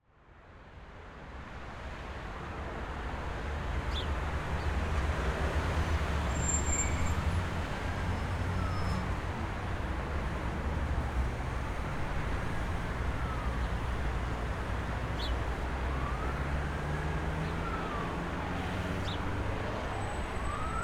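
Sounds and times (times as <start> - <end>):
busy city street traffic: 0.2 - 20.8
siren in city streets: 6.3 - 9.2, 12.4 - 20.8.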